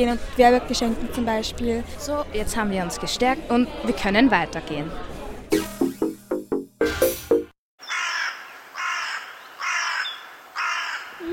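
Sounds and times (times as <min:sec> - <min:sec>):
speech: 0:00.0 - 0:05.7
birds calling outdoors with harsh raspy calls: 0:07.8 - 0:11.2.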